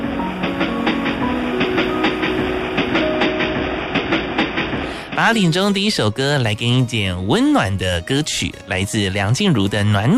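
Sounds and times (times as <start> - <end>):
train wheels clacking over rail joints: 0.0 - 6.2
continuous rumble of a passing train: 0.0 - 8.1
speech: 5.2 - 10.1.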